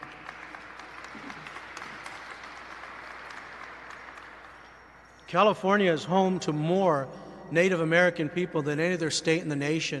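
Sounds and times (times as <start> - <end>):
room full of people applauding: 0.0 - 5.3
speech: 5.3 - 9.9.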